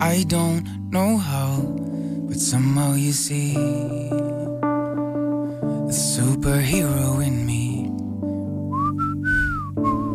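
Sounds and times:
instrumental music: 0:00.0 - 0:10.1
speech: 0:00.1 - 0:04.6, 0:05.9 - 0:07.6
person whistling a melody: 0:08.7 - 0:10.1.

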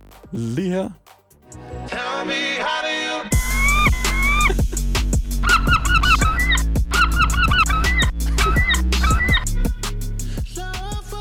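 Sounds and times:
speech: 0:00.3 - 0:01.1, 0:01.9 - 0:03.3
steady low hum: 0:03.4 - 0:09.7
sharp rhythmic knocks: 0:05.4 - 0:09.4
seagull calls squawking in quick bursts: 0:05.4 - 0:09.5.

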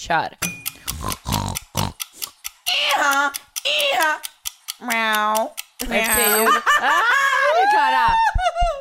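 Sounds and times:
speech: 0:00.0 - 0:01.2, 0:03.0 - 0:08.7
person imitating a pig's snorting grunts and oinks: 0:00.9 - 0:02.0.

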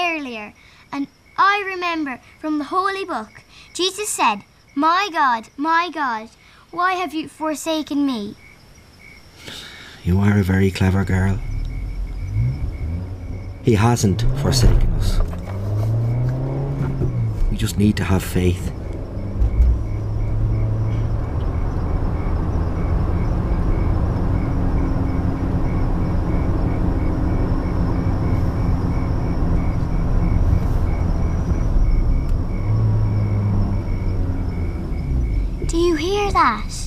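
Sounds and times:
speech: 0:00.9 - 0:08.4, 0:09.4 - 0:11.5, 0:13.6 - 0:15.4, 0:17.6 - 0:18.8
motor car engine approaching: 0:10.0 - 0:36.8.

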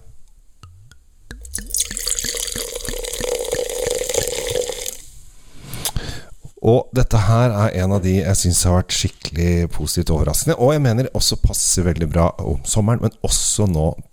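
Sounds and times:
quick drips: 0:00.6 - 0:05.1
freshly opened cider pouring into a glass: 0:01.3 - 0:05.1
speech: 0:06.6 - 0:14.1.

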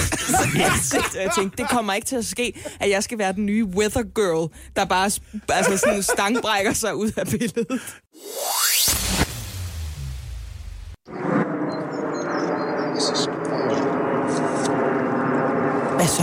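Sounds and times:
laughter: 0:00.0 - 0:02.8, 0:05.4 - 0:08.0
speech: 0:00.3 - 0:09.1
airplane roaring overhead: 0:11.0 - 0:16.2.

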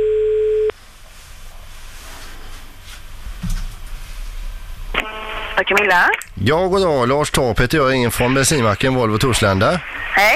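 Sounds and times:
electronic telephone ringing tone while calling: 0:00.0 - 0:00.7, 0:05.0 - 0:05.6
quiet phone line hiss: 0:05.0 - 0:06.1
speech: 0:05.6 - 0:10.3.

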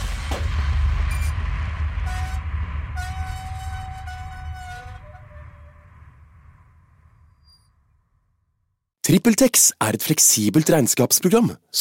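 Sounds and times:
roller coaster train rumbling on a tall metal track: 0:00.0 - 0:07.6
roller coaster train braking with a high metallic squeal: 0:03.0 - 0:06.0, 0:07.1 - 0:07.9
speech: 0:09.1 - 0:11.7.

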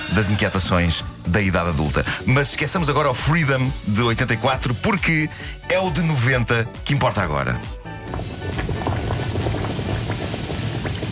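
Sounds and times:
speech: 0:00.2 - 0:08.3
liquid bubbling and gurgling in a music video intro: 0:08.0 - 0:11.1.

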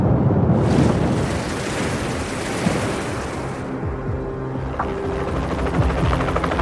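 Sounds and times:
ocean surf: 0:00.0 - 0:03.9
wind: 0:00.0 - 0:06.6
helicopter lifting off with rotor noise: 0:04.8 - 0:06.6.

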